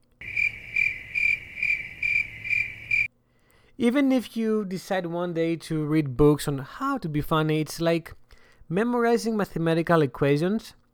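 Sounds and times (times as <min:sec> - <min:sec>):
crickets chirping: 0:00.2 - 0:03.1
speech: 0:03.8 - 0:10.8.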